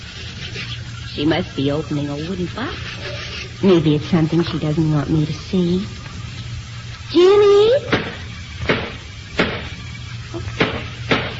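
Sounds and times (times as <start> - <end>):
low hum: 0.0 - 11.3
speech: 0.6 - 6.0, 7.1 - 7.9
sharp knocks: 7.9 - 9.7, 10.6 - 11.3.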